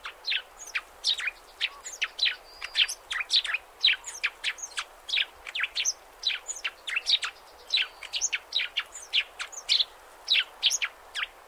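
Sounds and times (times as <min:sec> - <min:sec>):
Eurasian tree sparrow chirping: 0:00.0 - 0:11.4
faint background hiss: 0:00.0 - 0:11.4.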